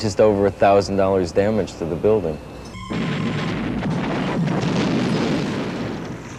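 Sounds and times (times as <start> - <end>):
speech: 0.0 - 3.1
loud explosion inside a movie theater during a film shoot: 2.8 - 6.3.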